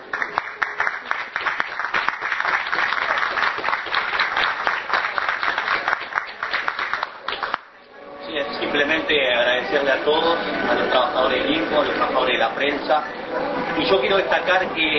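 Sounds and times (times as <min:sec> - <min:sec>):
audience applause: 0:00.0 - 0:07.7
speech: 0:09.0 - 0:14.9.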